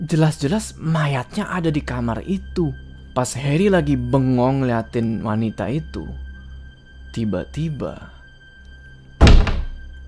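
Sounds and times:
speech: 0:00.1 - 0:06.2, 0:07.1 - 0:08.2
hotel room door slamming shut by itself: 0:09.2 - 0:09.9.

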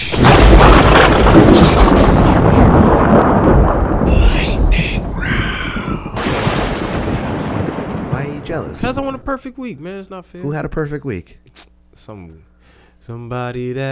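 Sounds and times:
thunder sound effect crack and rumble: 0:00.0 - 0:09.4
speech: 0:08.9 - 0:13.9.

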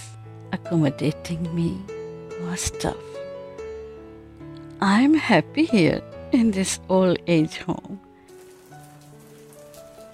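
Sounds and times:
speech: 0:00.6 - 0:03.2, 0:04.8 - 0:08.0
heavy rain pouring: 0:08.4 - 0:10.1.

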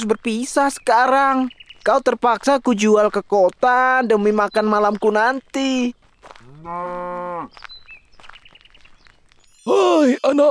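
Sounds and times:
speech: 0:00.0 - 0:06.0, 0:06.6 - 0:07.7, 0:09.6 - 0:10.4
cow mooing: 0:06.4 - 0:07.6.

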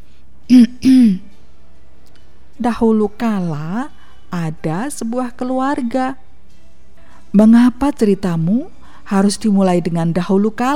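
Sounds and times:
person clearing throat with a voiced ahem: 0:00.5 - 0:01.3
speech: 0:02.6 - 0:06.2, 0:07.3 - 0:10.7.

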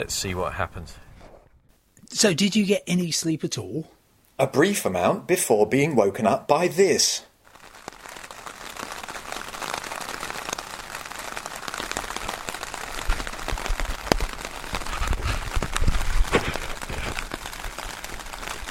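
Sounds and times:
speech: 0:00.0 - 0:01.1, 0:02.1 - 0:07.3
rain pattering on a tent in Streatham: 0:07.0 - 0:18.7.

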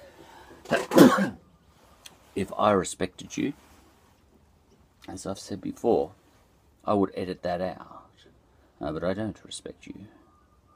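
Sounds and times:
person sneezing: 0:00.7 - 0:01.4
speech: 0:00.7 - 0:01.4, 0:02.4 - 0:03.7, 0:05.1 - 0:06.2, 0:06.8 - 0:08.0, 0:08.8 - 0:10.2.

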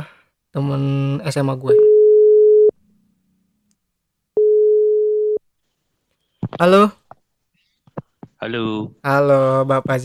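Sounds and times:
speech: 0:00.5 - 0:01.9, 0:06.6 - 0:07.0, 0:08.4 - 0:10.0
telephone ringback tone on an outgoing call: 0:01.8 - 0:02.7, 0:04.4 - 0:05.4.

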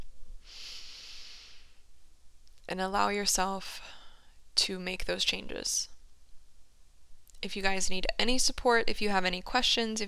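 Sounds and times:
deep breath: 0:00.4 - 0:01.9
speech: 0:02.7 - 0:04.0, 0:04.6 - 0:05.9, 0:07.4 - 0:10.0.

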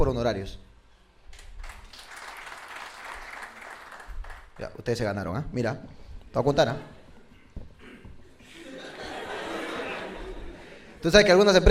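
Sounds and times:
speech: 0:00.0 - 0:00.7, 0:04.6 - 0:07.0, 0:11.0 - 0:11.6
audience applause at a comedy talk show: 0:01.6 - 0:04.6
laughter: 0:08.4 - 0:11.0.

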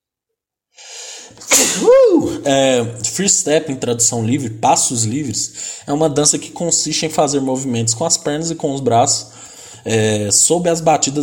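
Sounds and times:
speech: 0:01.3 - 0:11.2
single loud sneeze with breathy inhale: 0:01.4 - 0:02.4.

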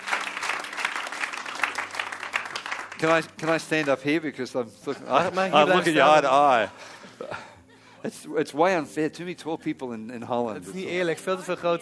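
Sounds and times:
crowd at a religious gathering in Holland applauding: 0:00.0 - 0:04.0
speech: 0:03.0 - 0:07.4, 0:08.0 - 0:11.8.

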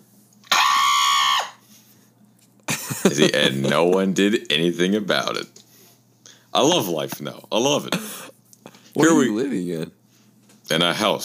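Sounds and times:
loud piercing human scream: 0:00.4 - 0:01.6
laughter: 0:02.7 - 0:04.2
speech: 0:03.0 - 0:05.6, 0:06.6 - 0:08.3, 0:09.0 - 0:10.0, 0:10.7 - 0:11.2.

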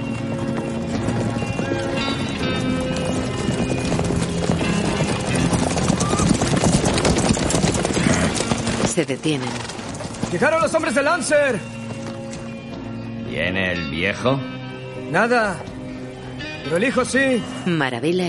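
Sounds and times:
hooves of several horses galloping along a street: 0:00.0 - 0:13.1
speech: 0:09.0 - 0:09.7, 0:10.3 - 0:11.7, 0:13.4 - 0:14.5, 0:15.1 - 0:15.7, 0:16.6 - 0:18.2.

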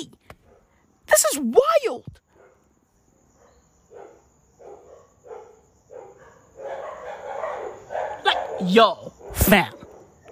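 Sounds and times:
several dogs barking: 0:00.4 - 0:00.8, 0:02.3 - 0:02.7, 0:03.3 - 0:10.3
speech: 0:01.1 - 0:02.2, 0:08.6 - 0:09.8
dogs snarling: 0:04.0 - 0:10.3.

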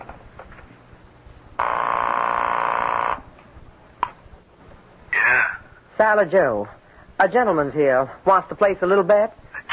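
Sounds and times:
steady loud telephone tone: 0:01.6 - 0:03.3
speech: 0:06.0 - 0:09.4.

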